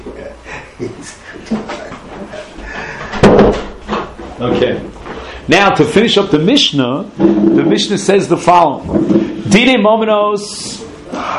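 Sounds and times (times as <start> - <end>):
room noise: 0.0 - 11.3
speech: 0.8 - 1.6, 5.5 - 11.3
door banging shut: 3.1 - 4.1.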